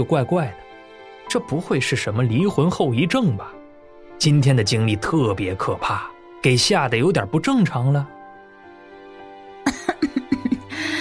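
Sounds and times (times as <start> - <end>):
speech: 0.0 - 0.6, 1.3 - 3.6, 4.2 - 8.2
woman coughing violently after choking on tea: 9.7 - 10.7.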